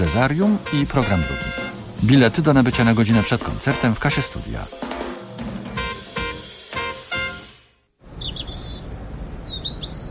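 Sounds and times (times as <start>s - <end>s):
speech: 0.0s - 5.0s
birds chirping: 7.3s - 10.0s.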